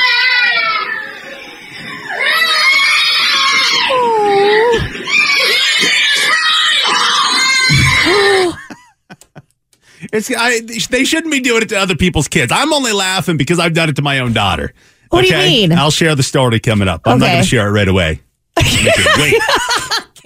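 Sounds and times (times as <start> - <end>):
children screaming: 0.0 - 8.7
laughter: 8.1 - 9.5, 18.6 - 20.2
speech: 10.2 - 19.9.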